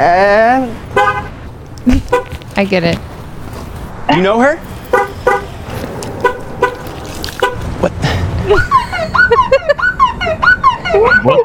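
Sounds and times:
speech: 0.0 - 0.8, 2.6 - 3.1, 4.1 - 4.7, 11.0 - 11.4
car horn chirping as the car locks: 0.9 - 1.4, 2.0 - 2.4, 4.6 - 7.8
laughter: 7.6 - 10.0.

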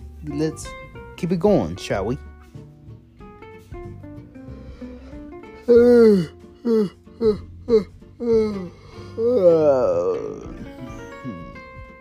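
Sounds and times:
speech: 0.2 - 2.3, 5.7 - 10.5
person yawning: 5.0 - 11.6.

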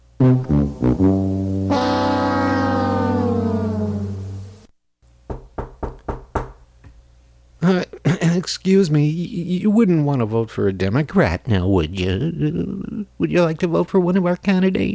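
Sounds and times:
long low droning horn-like tone: 0.5 - 4.7
sharp knocks on a door: 5.3 - 6.6
speech: 8.5 - 14.9.

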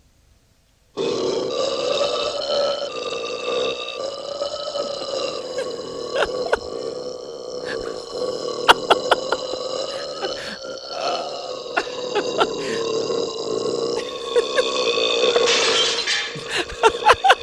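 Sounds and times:
droning belch-like groan: 1.0 - 17.4
laughter: 4.8 - 7.0, 7.6 - 12.9, 14.0 - 17.4
glass shattering: 15.4 - 16.5.

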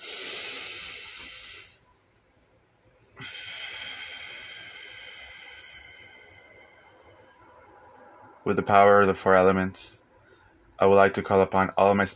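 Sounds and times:
person breathing deeply: 0.0 - 1.8, 3.2 - 7.4
speech: 8.4 - 9.9, 10.8 - 12.1.

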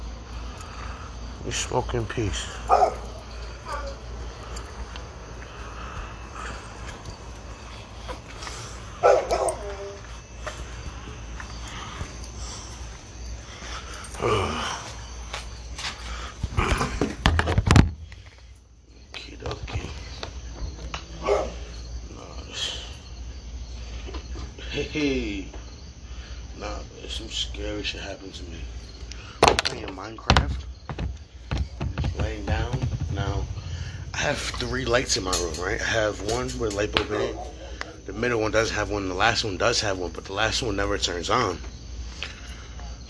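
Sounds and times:
chorus of crickets at night: 0.0 - 43.0
low hum: 0.0 - 43.0
speech: 1.4 - 2.8, 34.6 - 37.6, 38.2 - 41.6
dog barking outdoors at night after rain: 2.7 - 4.0, 9.0 - 10.0, 21.2 - 21.7.

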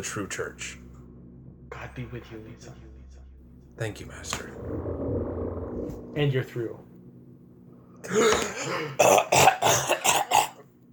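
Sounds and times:
speech: 0.0 - 0.8, 1.9 - 3.0, 3.8 - 5.0, 5.9 - 6.9, 8.0 - 10.5
person with a long rasping throat-clearing: 8.1 - 10.6
person with sharp hacking coughs: 8.1 - 10.6.

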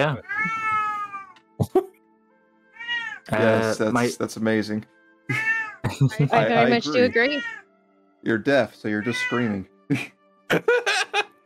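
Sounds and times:
speech: 0.0 - 0.6, 3.3 - 7.6, 8.2 - 10.9
cat meowing: 0.2 - 1.4, 2.8 - 3.4, 5.3 - 5.8, 6.6 - 7.6, 9.0 - 9.6
laughter: 5.8 - 7.2, 9.9 - 11.3.

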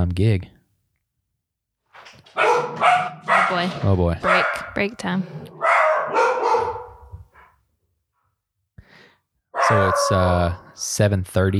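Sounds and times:
speech: 0.0 - 0.6, 2.4 - 6.3, 9.7 - 11.5
dogs barking at other dogs out on the street: 2.3 - 7.6, 9.6 - 10.5.

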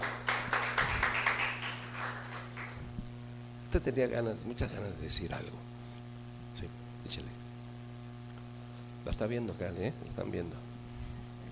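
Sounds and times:
audience applause: 0.0 - 2.8
low electrical hum: 0.0 - 11.5
speech: 3.7 - 5.7, 6.6 - 7.4, 9.0 - 10.7.

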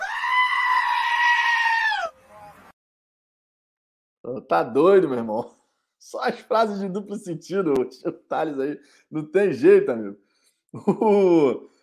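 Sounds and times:
goat bleating: 0.0 - 2.5
speech: 4.2 - 11.8
laughter: 10.8 - 11.5.

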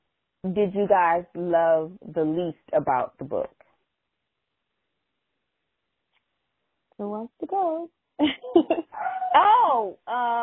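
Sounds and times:
speech: 0.4 - 3.6, 7.0 - 10.4
dog barking: 8.9 - 9.4
dog whining: 8.9 - 9.5.

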